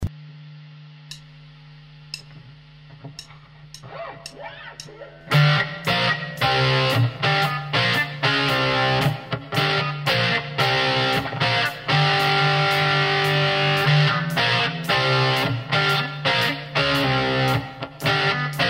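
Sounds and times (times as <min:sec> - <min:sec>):
distorted vintage Stratocaster electric guitar: 0:02.1 - 0:18.6.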